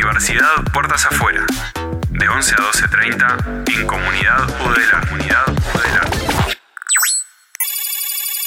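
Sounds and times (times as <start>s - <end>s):
speech: 0.1s - 6.4s
electronic telephone ringtone for an incoming call: 6.9s - 8.4s.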